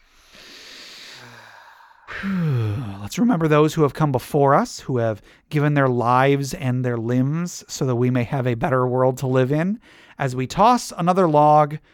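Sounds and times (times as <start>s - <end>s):
single long deep breath: 0.0s - 3.1s, 5.2s - 5.5s, 9.8s - 10.2s
speech: 2.2s - 2.5s, 3.1s - 11.9s.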